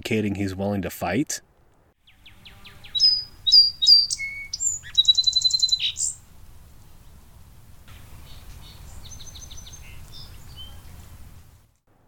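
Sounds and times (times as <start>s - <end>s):
speech: 0.0s - 1.5s
song sparrow singing: 2.0s - 6.2s, 7.9s - 11.0s.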